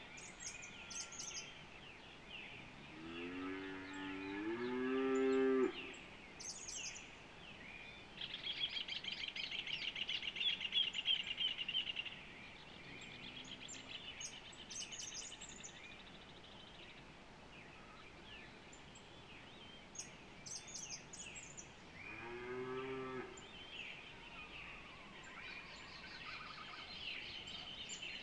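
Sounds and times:
other small birds chirping high: 3.8s - 28.2s.

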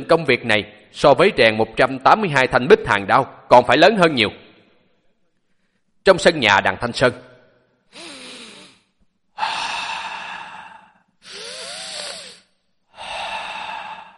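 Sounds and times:
speech: 0.0s - 4.4s, 6.0s - 7.3s
deep forceful breathing during martial arts practice: 7.9s - 14.1s.

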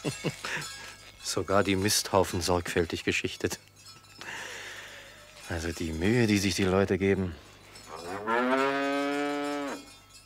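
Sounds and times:
speech: 0.0s - 3.7s, 5.5s - 7.5s
cow lowing in the countryside on a summer evening: 7.9s - 9.9s.

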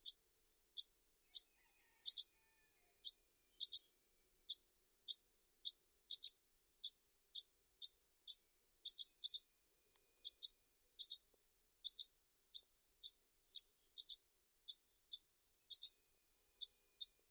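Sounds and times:
bird chirping in short high sharp notes: 0.0s - 17.2s.

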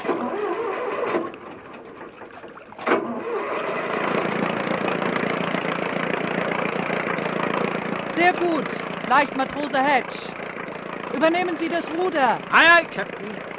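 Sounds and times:
boat motor on a ship in harbour starting and running: 0.0s - 13.5s
speech: 8.3s - 10.4s, 11.2s - 13.5s.

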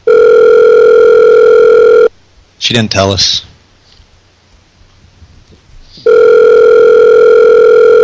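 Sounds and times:
electronic telephone tone on the line: 0.0s - 2.1s, 6.0s - 8.0s
speech: 2.7s - 3.5s.

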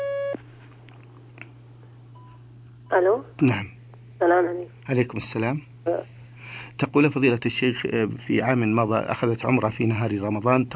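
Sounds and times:
telephone line tone on a phone-in line: 0.0s - 0.4s
steady low electrical hum: 0.0s - 10.7s
speech: 2.9s - 10.7s.

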